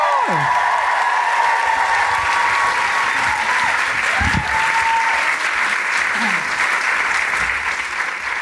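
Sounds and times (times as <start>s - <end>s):
faint cheers and whoops: 0.0s - 5.6s
large audience applauding a performer: 0.0s - 8.4s.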